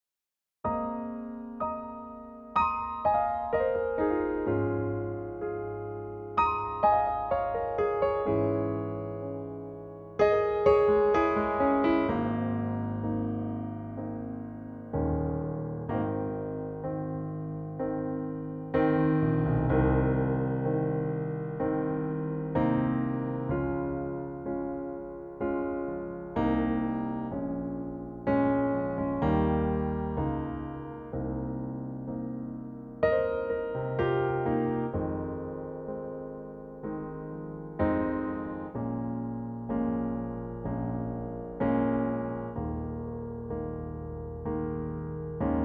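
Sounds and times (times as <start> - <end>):
piano in A-flat: 0.6 - 45.6.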